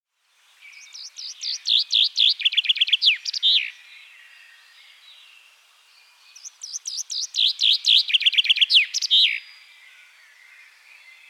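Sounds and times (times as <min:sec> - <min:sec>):
common chaffinch singing: 0:00.5 - 0:05.2, 0:06.1 - 0:11.2.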